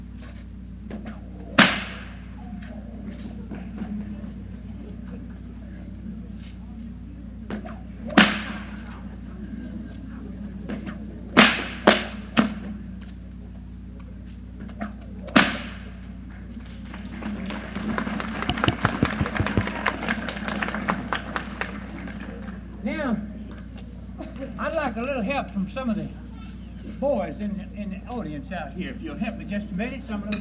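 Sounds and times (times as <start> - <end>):
steady low murmur of an audience with faint voices: 0.4 - 29.4
loud sharp bullwhip cracks from a performer before an audience: 7.6 - 8.7, 11.4 - 12.5, 15.3 - 15.8
speech: 25.2 - 26.2, 27.0 - 30.4.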